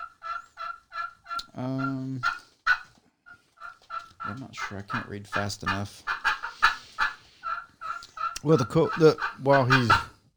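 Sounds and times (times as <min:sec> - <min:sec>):
wooden turkey call imitating gobbling: 0:00.0 - 0:10.2
speech: 0:01.6 - 0:02.4, 0:04.3 - 0:06.2, 0:08.4 - 0:10.1.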